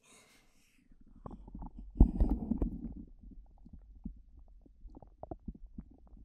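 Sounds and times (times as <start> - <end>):
stomach rumbling and gurgling: 0.8 - 6.2.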